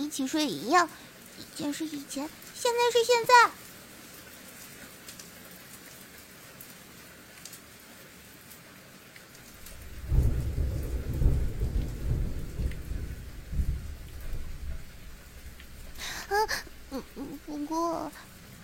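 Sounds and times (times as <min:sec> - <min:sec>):
steady rain hiss: 0:00.0 - 0:18.6
speech: 0:00.1 - 0:03.7
deep rolling thunder: 0:09.6 - 0:17.5
vocal sounds: 0:16.0 - 0:18.3.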